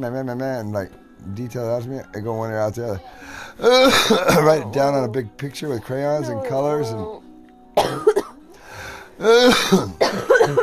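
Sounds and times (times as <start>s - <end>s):
speech: 0.0s - 7.2s, 9.2s - 10.6s
raspy breath: 3.0s - 3.7s, 8.5s - 9.3s
person coughing harsh wet bursts: 3.6s - 4.7s, 7.8s - 8.4s, 9.2s - 10.6s.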